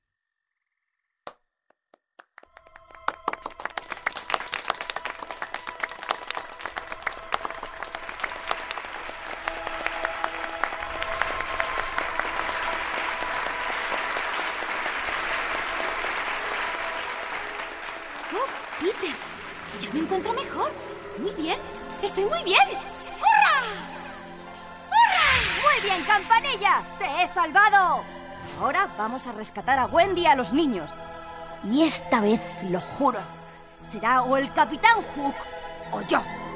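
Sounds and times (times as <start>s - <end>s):
audience applause: 2.4s - 26.6s
speech: 27.2s - 36.4s.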